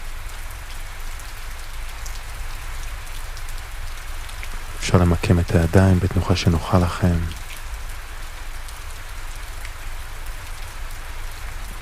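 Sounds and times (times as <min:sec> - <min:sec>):
dense rainfall pattering on foliage in a rainforest: 0:00.0 - 0:11.8
speech: 0:04.8 - 0:07.4.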